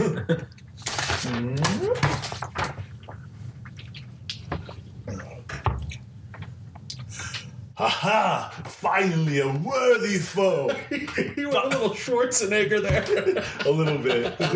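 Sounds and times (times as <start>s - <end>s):
swallowing water: 0.0s - 8.0s
voiced murmur: 0.0s - 8.8s
speech: 0.3s - 0.5s, 1.3s - 2.0s, 7.8s - 14.5s
person sipping and slurping water: 0.4s - 7.8s
soft mouth clicks: 0.4s - 7.8s
laughter: 10.5s - 12.2s, 12.8s - 14.5s.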